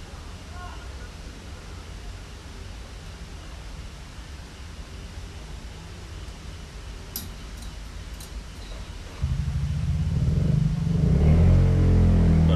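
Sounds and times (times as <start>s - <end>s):
motorcycle engine rumbling past: 9.2s - 12.5s.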